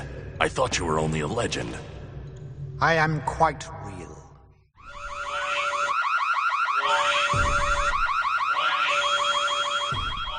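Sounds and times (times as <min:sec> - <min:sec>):
speech: 0:00.4 - 0:02.0, 0:02.8 - 0:04.0
electronic car alarm blaring: 0:04.8 - 0:10.3.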